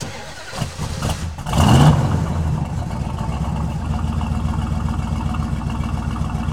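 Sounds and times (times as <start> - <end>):
1968 Road Runner car engine starting: 0.0 - 6.5.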